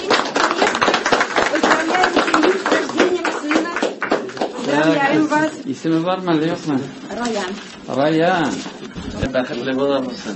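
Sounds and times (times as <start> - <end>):
crowd applause at a birth ceremony: 0.0 - 4.7
speech: 5.1 - 10.3.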